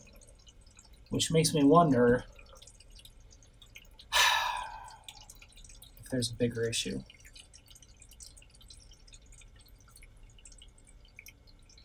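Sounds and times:
water trickling into a toilet bowl: 0.0s - 11.8s
speech: 1.1s - 2.4s, 6.1s - 7.2s.

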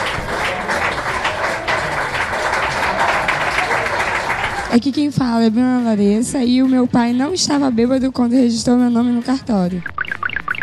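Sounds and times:
murmur of voices: 0.0s - 4.8s
group clapping: 0.0s - 4.9s
speech: 4.7s - 10.0s.

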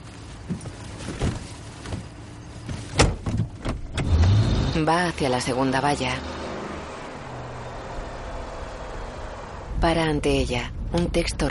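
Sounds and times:
soft thumps and shuffling of a police officer getting into a car: 0.0s - 4.0s
car door clunk: 2.7s - 4.2s
speech: 4.8s - 6.4s, 9.8s - 11.5s.

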